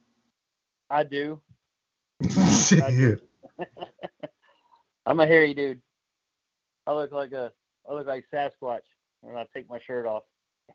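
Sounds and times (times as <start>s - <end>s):
speech: 0.9s - 1.6s, 2.2s - 3.9s, 5.0s - 5.9s, 6.9s - 10.7s
man clearing his throat: 2.2s - 3.2s
short guttural huffs: 2.2s - 3.2s
laughter: 2.2s - 4.3s.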